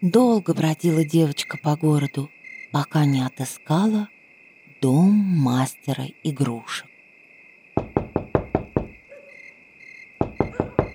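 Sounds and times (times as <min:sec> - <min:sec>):
speech: 0:00.0 - 0:04.2, 0:04.8 - 0:06.9
high chirring of crickets: 0:00.0 - 0:10.9
sharp knocks on a door: 0:07.8 - 0:09.0, 0:10.2 - 0:10.9.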